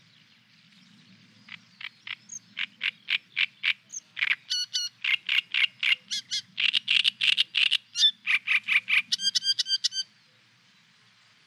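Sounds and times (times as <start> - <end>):
great reed warbler singing grating frog-like churrs: 0.0 - 11.0.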